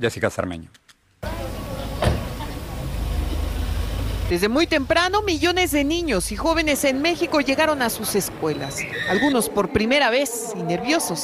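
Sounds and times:
speech: 0:00.0 - 0:00.9, 0:04.3 - 0:11.2
vehicle engines idling and passing in Mexico's capital: 0:01.2 - 0:09.1
low rumble of heavy street traffic in Mexico's capital: 0:01.2 - 0:09.8
indistinct voices: 0:01.2 - 0:11.2
sharp clunk: 0:02.0 - 0:02.4.

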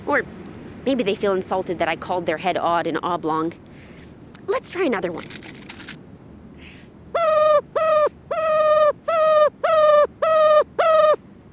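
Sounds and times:
speech: 0:00.1 - 0:03.9, 0:04.5 - 0:05.6
ruffed grouse calling: 0:07.2 - 0:11.2.

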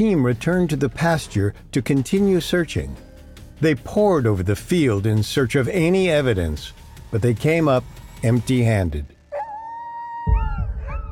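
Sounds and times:
speech: 0:00.0 - 0:03.0, 0:03.6 - 0:09.2
dogs howling in long wavering tones: 0:09.3 - 0:11.1.

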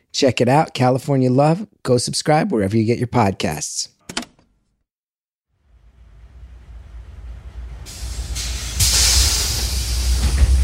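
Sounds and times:
speech: 0:00.2 - 0:04.0
city bus engine rumble: 0:05.8 - 0:10.6
city bus air brakes hissing: 0:07.7 - 0:10.6.

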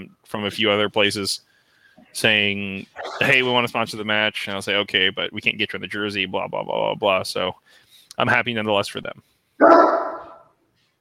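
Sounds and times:
speech: 0:00.0 - 0:10.0
dog barking: 0:09.6 - 0:10.4.

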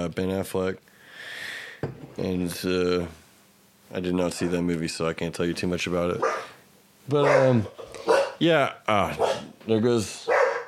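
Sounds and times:
speech: 0:00.0 - 0:00.9, 0:01.8 - 0:03.2, 0:03.9 - 0:10.3
dog barking: 0:06.2 - 0:06.6, 0:07.2 - 0:08.4, 0:09.2 - 0:09.5, 0:10.3 - 0:10.6.

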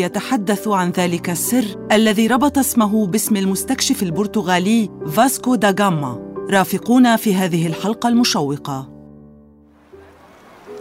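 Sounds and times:
speech: 0:00.0 - 0:08.9
sea waves washing against the shore: 0:09.8 - 0:10.8.

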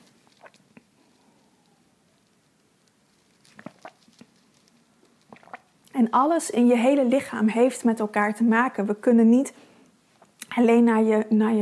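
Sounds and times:
person sipping water: 0:00.0 - 0:01.8, 0:03.4 - 0:04.4, 0:05.0 - 0:05.9
slurps: 0:00.2 - 0:01.0, 0:03.5 - 0:04.3, 0:05.2 - 0:05.7
soft wet mouth clicks: 0:00.3 - 0:00.9, 0:03.5 - 0:04.4, 0:05.1 - 0:05.7
speech: 0:06.0 - 0:09.7, 0:10.6 - 0:11.5.

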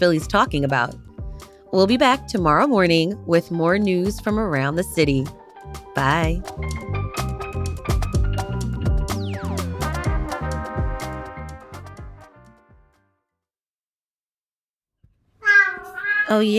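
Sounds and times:
upbeat music: 0:00.0 - 0:01.0, 0:01.8 - 0:12.6
speech: 0:00.0 - 0:01.1, 0:01.7 - 0:05.4, 0:06.0 - 0:06.9, 0:16.3 - 0:16.5
cat meowing: 0:15.4 - 0:16.5.

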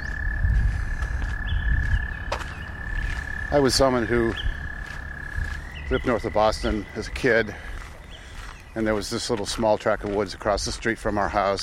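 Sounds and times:
lower frog croaks: 0:00.0 - 0:08.4
frog chorus trilling: 0:00.0 - 0:11.6
speech: 0:03.5 - 0:04.5, 0:05.9 - 0:07.7, 0:08.7 - 0:11.6.

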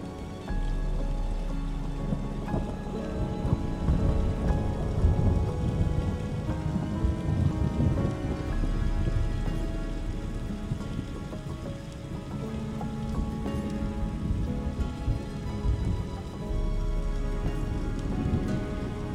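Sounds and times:
calm serene music with sustained held tones: 0:00.0 - 0:19.1
gentle rain: 0:00.0 - 0:19.1
soft thunderstorm rumbling: 0:00.0 - 0:19.1.

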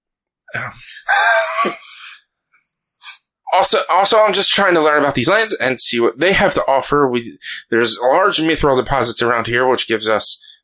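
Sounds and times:
speech: 0:00.5 - 0:02.0, 0:03.5 - 0:10.4
person yawning: 0:00.5 - 0:02.2.

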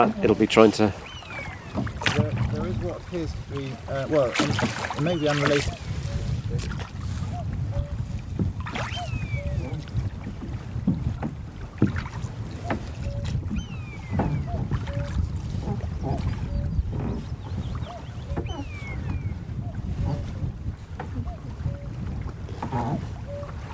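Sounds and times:
speech: 0:00.0 - 0:01.1, 0:01.8 - 0:05.9, 0:06.5 - 0:06.9
birds calling: 0:00.0 - 0:08.0, 0:08.6 - 0:09.8, 0:12.4 - 0:20.2, 0:22.6 - 0:23.6
lapping water of a loch in Assynt Scotland: 0:00.0 - 0:23.7
rowing boat oars dipping and splashing on a loch in Assynt Scotland: 0:00.0 - 0:23.7
wind over a loch in Assynt Scotland: 0:00.0 - 0:23.7
cuckoo calling: 0:01.0 - 0:02.0, 0:08.8 - 0:09.8, 0:12.6 - 0:20.2, 0:21.2 - 0:21.9, 0:23.2 - 0:23.6.

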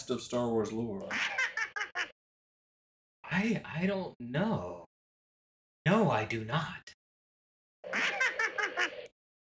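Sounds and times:
speech: 0:00.1 - 0:01.4, 0:03.3 - 0:04.8, 0:05.8 - 0:07.0
quirky character laugh with bouncy voiced chuckles: 0:01.1 - 0:02.2, 0:07.9 - 0:09.1.

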